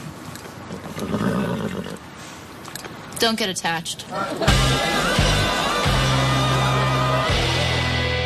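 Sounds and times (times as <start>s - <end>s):
horse neighing: 0.7s - 2.1s
speech: 3.2s - 5.2s
laughter: 4.1s - 8.1s.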